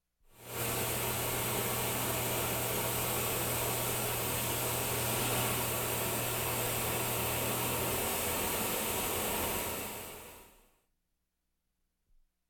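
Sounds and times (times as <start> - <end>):
gas burner flame: 0.4 - 10.4.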